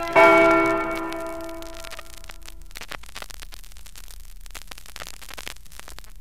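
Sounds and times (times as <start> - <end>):
Liberty Bell tolling in Philadelphia: 0.2 - 1.8.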